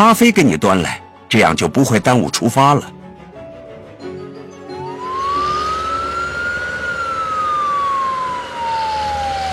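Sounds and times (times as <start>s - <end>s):
speech: 0.0s - 3.0s
police car siren wailing: 4.7s - 9.5s
steady rumble of engine and road noise: 4.8s - 9.5s.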